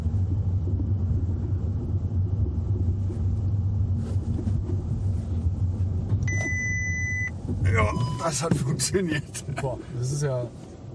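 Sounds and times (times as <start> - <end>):
car rolling slowly heard from inside the cabin: 0.0 - 10.9
short electronic warning chime as the car brakes automatically: 6.3 - 8.4
speech: 7.7 - 10.9.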